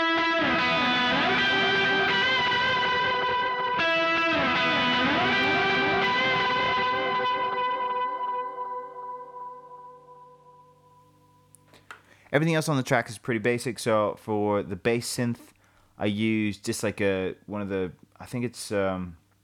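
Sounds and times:
electric guitar through overdrive, delay and harmonizer pedals: 0:00.0 - 0:12.0
speech: 0:12.3 - 0:19.2.

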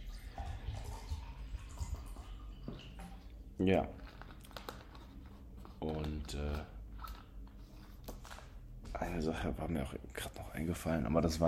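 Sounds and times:
water pouring into a glass: 0:00.0 - 0:04.0
water dripping: 0:00.0 - 0:04.9
speech: 0:03.6 - 0:04.0, 0:06.3 - 0:06.7, 0:09.0 - 0:11.4.

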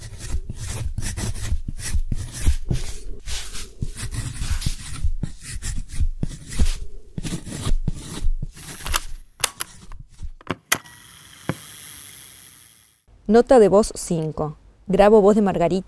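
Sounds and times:
pen nib scratching on paper: 0:00.0 - 0:08.8
speech: 0:13.3 - 0:15.8.

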